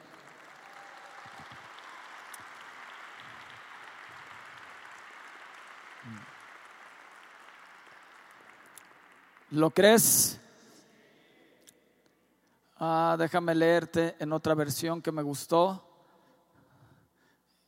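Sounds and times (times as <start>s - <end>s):
crowd applauding in a large room: 0.0s - 10.0s
speech: 9.5s - 10.4s, 12.8s - 15.9s.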